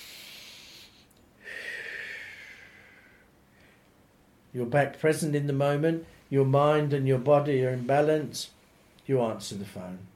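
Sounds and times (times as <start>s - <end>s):
single deep breath taken during a mindfulness exercise: 0.0s - 3.9s
speech: 4.5s - 10.1s.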